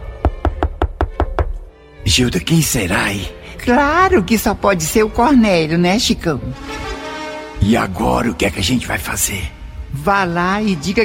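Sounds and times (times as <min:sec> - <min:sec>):
knocking on a door: 0:00.2 - 0:01.7
speech: 0:02.1 - 0:06.8, 0:07.6 - 0:11.0.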